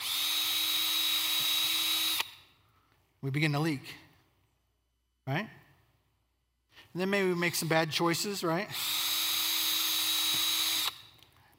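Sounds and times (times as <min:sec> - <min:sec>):
power drill whining: 0:00.0 - 0:02.5, 0:08.7 - 0:11.2
speech: 0:03.2 - 0:04.0, 0:05.3 - 0:05.6, 0:06.9 - 0:09.1.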